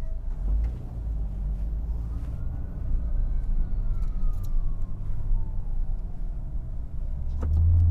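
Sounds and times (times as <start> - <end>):
car traffic rumble on a bridge: 0.0 - 7.8
emergency vehicle siren: 1.8 - 7.0.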